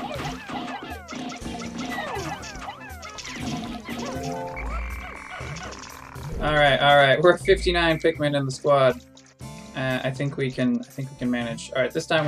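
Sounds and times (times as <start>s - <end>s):
chirpy video game sound effects: 0.0s - 8.4s
game music: 0.0s - 12.2s
video game frog enemy croaking: 1.5s - 8.2s
speech: 6.4s - 9.1s, 9.8s - 12.2s.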